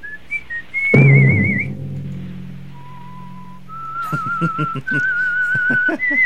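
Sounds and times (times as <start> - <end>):
man whistling slow eerie melody of a radio show theme: 0.0 - 1.8, 2.7 - 6.2
deep thump: 1.0 - 4.5.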